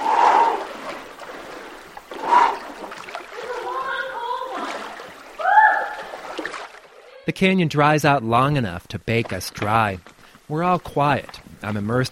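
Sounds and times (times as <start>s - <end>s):
water sloshing and splashing as someone wades in a narrow canyon: 0.0s - 7.3s
speech: 7.4s - 12.1s.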